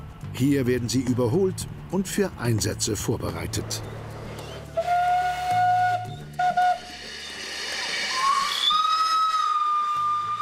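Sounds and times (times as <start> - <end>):
speech: 0.4 - 4.0
operational steam locomotive whistle on a farm: 4.5 - 10.3
steam escaping from an operational steam locomotive on a farm: 6.4 - 10.3.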